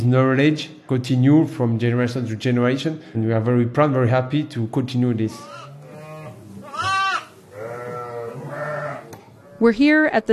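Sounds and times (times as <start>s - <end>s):
speech: 0.0s - 5.6s, 9.6s - 10.3s
lambs bleating in a barn on a sheep dairy farm: 5.3s - 9.7s.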